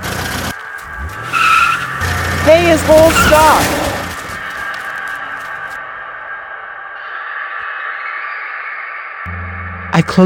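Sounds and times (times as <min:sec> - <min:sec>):
car tires skidding: 0:00.0 - 0:07.6
car engine roaring: 0:00.0 - 0:10.2
speech: 0:02.5 - 0:03.8, 0:10.0 - 0:10.2.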